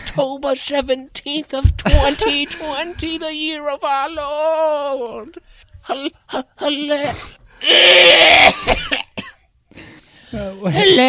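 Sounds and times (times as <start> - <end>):
speech: 0.2 - 9.0, 10.3 - 11.0
loud harsh cough: 8.3 - 9.5.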